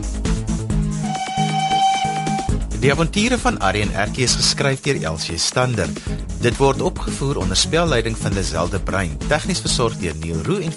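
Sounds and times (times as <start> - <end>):
steam train whistle: 1.0 - 2.6
speech: 2.8 - 10.7.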